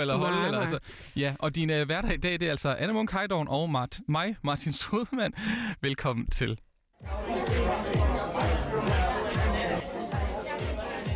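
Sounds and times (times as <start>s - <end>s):
speech: 0.0s - 9.0s
dense crowd chatter in a nightclub: 7.0s - 11.1s
thumping bass beat in a nightclub: 7.0s - 11.1s.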